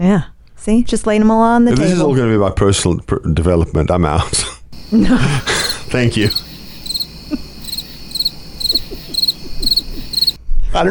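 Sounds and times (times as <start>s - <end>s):
speech: 0.0s - 6.5s
crickets chirping: 4.8s - 10.4s
laughter: 4.9s - 6.4s, 7.2s - 7.7s, 8.5s - 10.2s.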